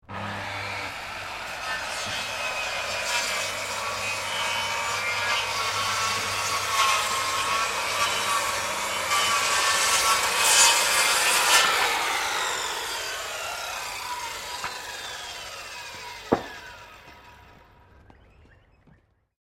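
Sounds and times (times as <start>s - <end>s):
Makita circular saw cutting wood: 0.0s - 17.7s.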